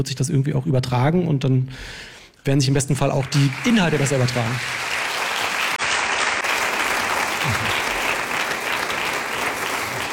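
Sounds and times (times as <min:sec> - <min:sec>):
speech: 0:00.0 - 0:05.0
audience applause: 0:03.2 - 0:10.1.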